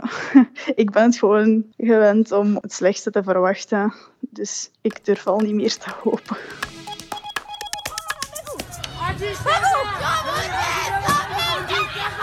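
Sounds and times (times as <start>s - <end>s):
speech: 0.1s - 6.7s
rhythmic clapping or banging: 4.9s - 9.1s
laughter: 5.8s - 6.6s, 7.9s - 12.2s
roar of many people at a street protest: 7.8s - 12.2s
crowd of protesters shouting at a street protest: 8.0s - 12.2s
crowd of protesters chanting at a street protest: 8.4s - 12.2s.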